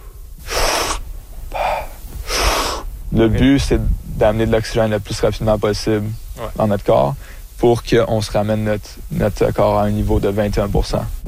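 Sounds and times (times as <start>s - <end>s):
deep recovery breaths at the water's surface after a dive: 0.0s - 3.2s, 6.2s - 7.6s
speech: 3.1s - 11.2s.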